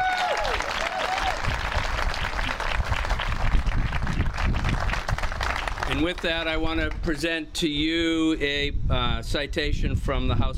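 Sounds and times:
crowd applauding: 0:00.0 - 0:06.5
speech: 0:06.0 - 0:10.5.

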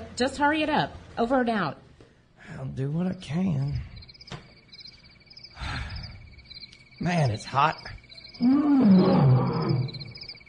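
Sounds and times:
faint steady hum: 0:00.0 - 0:10.4
speech: 0:00.2 - 0:01.8, 0:02.5 - 0:03.9, 0:07.0 - 0:09.6
lion roaring: 0:08.4 - 0:10.2.

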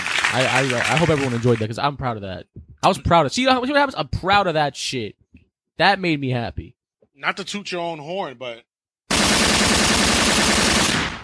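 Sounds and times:
speech: 0:00.3 - 0:05.2, 0:05.8 - 0:09.6
automatic gunfire sound effect: 0:09.1 - 0:11.2.

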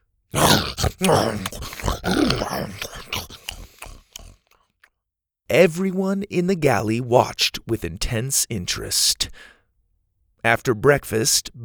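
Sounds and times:
voice imitating a creature chomping and grinding through hotcakes: 0:00.3 - 0:04.7
speech: 0:00.9 - 0:03.1, 0:05.5 - 0:09.5, 0:10.4 - 0:11.6.

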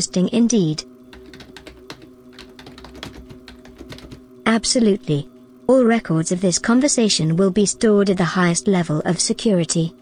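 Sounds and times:
speech: 0:00.0 - 0:00.9, 0:04.5 - 0:09.9
faint constant hum: 0:00.0 - 0:09.9
keyboard typing: 0:01.1 - 0:04.3.

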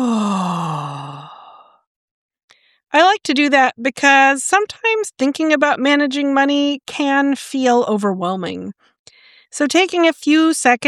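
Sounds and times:
deep voiced exhale after a held breath during a breathing exercise: 0:00.0 - 0:01.8
speech: 0:03.0 - 0:08.9, 0:09.5 - 0:10.8.

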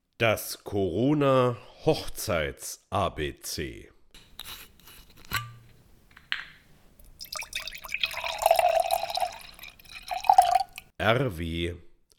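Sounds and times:
speech: 0:00.2 - 0:04.6, 0:11.0 - 0:11.9
white Riesling wine poured into a glass: 0:07.1 - 0:10.9.

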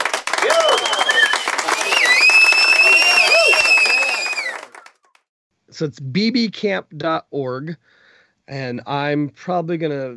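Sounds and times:
crowd applauding with dense clapping: 0:00.0 - 0:05.2
high whistles: 0:00.4 - 0:04.9
speech: 0:05.8 - 0:10.1.

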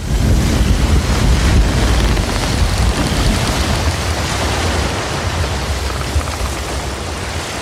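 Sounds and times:
heavy churning ocean waves striking a ship bow: 0:00.0 - 0:07.5
roaring storm wind on the high sea: 0:00.0 - 0:07.5.

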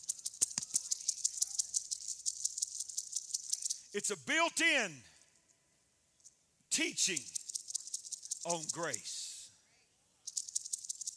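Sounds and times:
poisonous rattlesnake tail rattle warning: 0:00.0 - 0:04.0, 0:07.1 - 0:09.0, 0:10.2 - 0:11.1
speech: 0:03.9 - 0:05.1, 0:06.8 - 0:07.4, 0:08.4 - 0:09.2.

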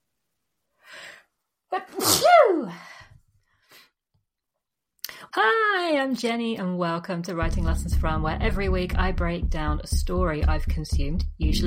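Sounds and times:
person sneezing: 0:01.9 - 0:02.7
speech: 0:05.4 - 0:11.6.

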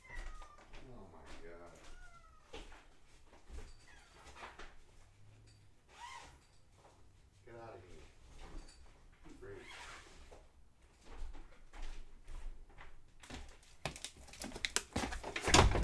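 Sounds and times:
cat meowing: 0:00.0 - 0:00.8, 0:01.7 - 0:02.6
noisy indoor background: 0:00.0 - 0:15.8.

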